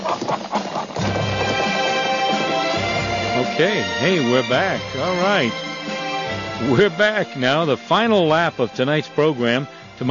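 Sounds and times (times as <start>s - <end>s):
loud sustained horse whinny: 0.0s - 4.2s
horse hooves clip-clopping: 0.0s - 7.1s
speech: 3.6s - 5.7s, 6.6s - 10.0s.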